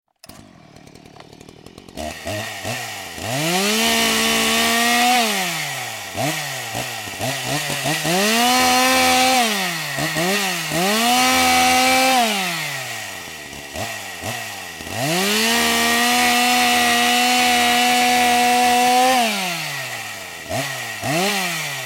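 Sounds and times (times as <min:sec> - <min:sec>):
chainsaw: 0:00.1 - 0:21.8.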